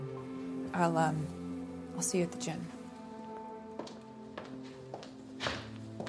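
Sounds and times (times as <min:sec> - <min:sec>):
speech: 0:00.7 - 0:01.4, 0:02.0 - 0:02.8
soft light footsteps of a man running away: 0:03.3 - 0:06.0.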